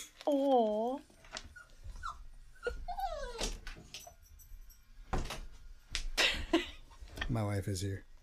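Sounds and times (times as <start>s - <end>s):
speech: 0.3s - 1.1s, 7.4s - 8.1s
dog whimpering: 1.5s - 3.7s.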